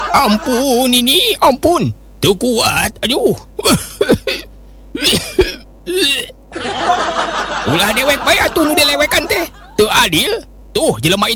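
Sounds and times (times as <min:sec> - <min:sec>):
laughter: 0:00.0 - 0:00.9, 0:06.5 - 0:10.0
speech: 0:00.1 - 0:04.3, 0:05.0 - 0:11.3
narrator imitating an old man coughing: 0:03.6 - 0:06.4.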